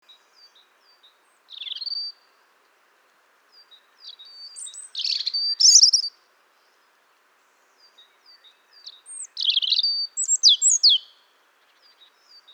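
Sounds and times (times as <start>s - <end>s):
European robin singing high thin whistles and sparkling twitters: 4.5s - 6.1s, 9.2s - 11.1s.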